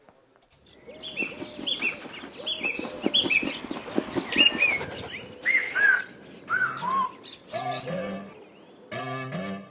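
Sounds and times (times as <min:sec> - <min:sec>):
birds chirping and tweeting: 0:00.2 - 0:09.4.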